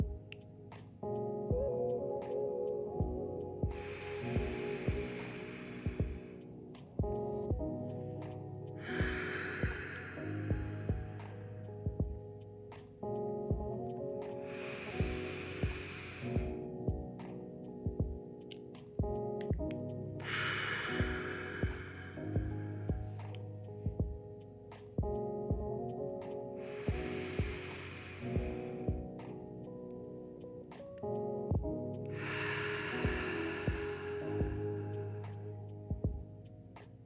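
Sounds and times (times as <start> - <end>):
soft sustained music: 0.0 - 37.0
slow deep breaths during a guided relaxation: 3.7 - 6.6, 7.9 - 11.7, 14.4 - 17.2, 20.2 - 23.4, 26.6 - 29.2, 32.1 - 35.6.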